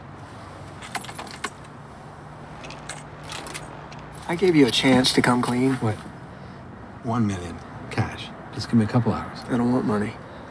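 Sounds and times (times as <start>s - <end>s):
keys jangling as they are handed over: 0.8s - 1.7s, 2.6s - 4.2s
speech: 4.3s - 6.1s, 7.0s - 7.7s, 8.6s - 10.2s.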